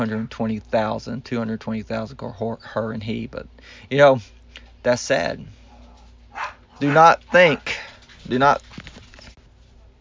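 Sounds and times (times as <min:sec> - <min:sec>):
speech: 0:00.0 - 0:05.6, 0:06.4 - 0:08.7
dog barking and whimpering: 0:05.6 - 0:07.8.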